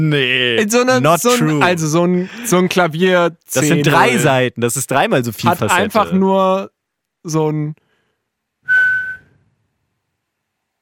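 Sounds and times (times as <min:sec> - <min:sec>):
speech: 0:00.0 - 0:07.8
single steady whistled note imitating a tone: 0:08.6 - 0:09.5.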